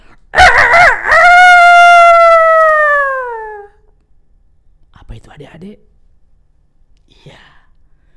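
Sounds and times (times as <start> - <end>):
rooster crowing loudly: 0.4 - 3.8
speech: 5.6 - 5.9.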